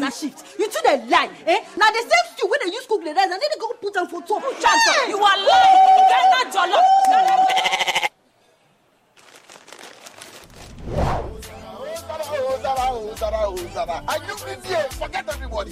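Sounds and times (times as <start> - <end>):
speech: 0.1 - 7.8, 13.2 - 15.6
goat bleating: 7.4 - 8.1
busy musical backing with rising tones: 10.8 - 11.8.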